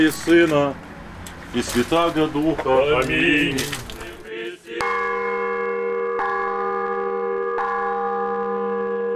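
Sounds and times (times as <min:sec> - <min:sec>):
speech: 0:00.0 - 0:00.8, 0:01.5 - 0:03.8
church bells ringing: 0:04.8 - 0:09.1.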